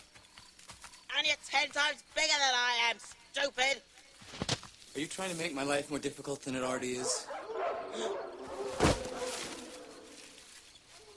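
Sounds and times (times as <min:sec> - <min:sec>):
speech: 0:01.2 - 0:04.4, 0:05.0 - 0:08.4
loud deep bark from a big dog: 0:07.0 - 0:09.5.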